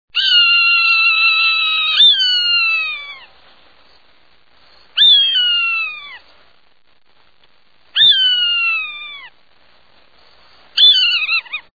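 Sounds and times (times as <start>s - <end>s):
Swainson's hawk calling with shrill drawn-out screams: 0.2s - 3.3s, 5.0s - 6.2s, 8.0s - 9.4s, 10.8s - 11.7s.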